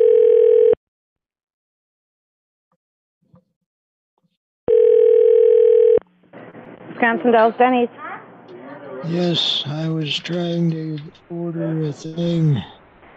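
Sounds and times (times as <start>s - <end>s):
telephone tone while calling a restaurant: 0.0s - 0.8s, 4.7s - 6.0s
speech: 7.0s - 8.0s, 9.0s - 12.8s.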